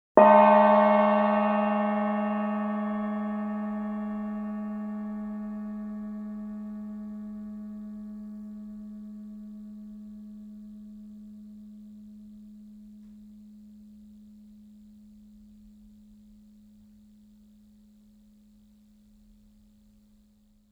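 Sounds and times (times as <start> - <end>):
gongs: 0.2 - 11.6.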